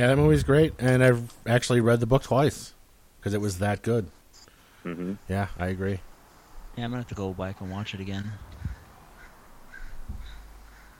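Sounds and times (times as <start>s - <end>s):
speech: 0.0s - 4.2s, 4.8s - 6.1s, 6.8s - 8.5s
crows cawing: 7.5s - 10.9s.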